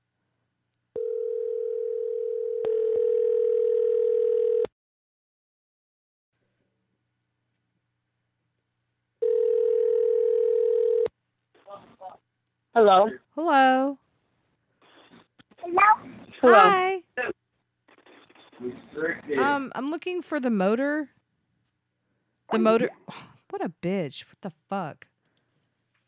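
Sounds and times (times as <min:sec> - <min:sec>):
telephone ringing over the line with long electronic tones: 0:01.0 - 0:04.7, 0:09.2 - 0:11.1
speech: 0:12.8 - 0:14.0, 0:15.7 - 0:17.3, 0:18.6 - 0:21.2, 0:22.5 - 0:25.1.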